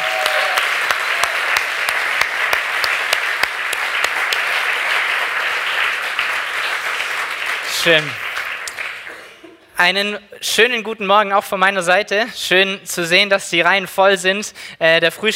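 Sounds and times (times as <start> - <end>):
congregation applauding: 0.0 - 9.4
speech: 7.8 - 8.2, 9.8 - 15.3.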